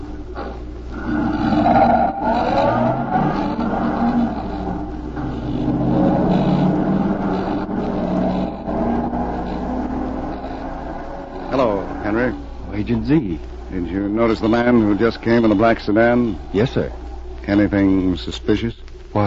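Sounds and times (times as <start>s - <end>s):
car engine roaring and revving as the vehicle pulls away: 0.9s - 13.2s
speech: 12.9s - 19.2s.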